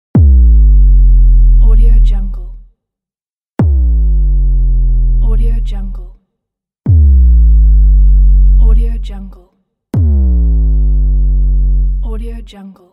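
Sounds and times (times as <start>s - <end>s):
sub bass drop impulse: 0.1s - 2.6s, 3.6s - 6.1s, 6.9s - 9.3s, 10.0s - 12.4s.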